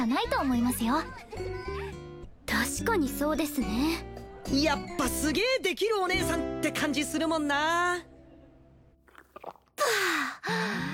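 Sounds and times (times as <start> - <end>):
speech: 0.0 - 8.1
person gulping alcohol: 9.0 - 10.0.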